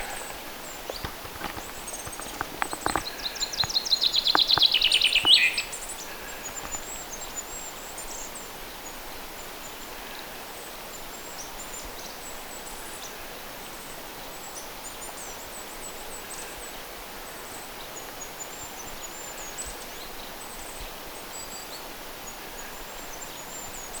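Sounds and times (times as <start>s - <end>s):
chaffinch unusual rolling calls: 0.0s - 8.4s
goldcrest cheerful calls: 0.0s - 23.9s.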